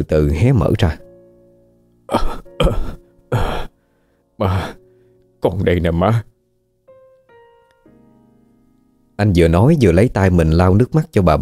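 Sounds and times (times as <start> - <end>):
speech: 0.0 - 1.0, 2.1 - 3.5, 4.4 - 4.8, 5.4 - 6.3, 9.2 - 11.4
old woman coughing in a choking fit: 2.1 - 3.7.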